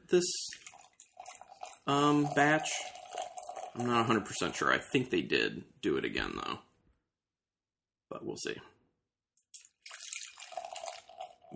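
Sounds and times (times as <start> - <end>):
speech: 0.1 - 0.6, 1.9 - 3.0, 3.8 - 6.7, 8.1 - 8.7
dark cherry and vanilla beer pouring into a glass: 0.4 - 5.1, 9.6 - 11.5.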